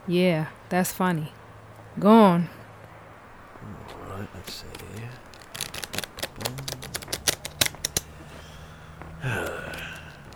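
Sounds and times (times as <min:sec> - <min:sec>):
speech: 0:00.1 - 0:01.4, 0:02.0 - 0:02.6, 0:03.6 - 0:05.2
deck of tarot cards being shuffled: 0:03.9 - 0:10.3.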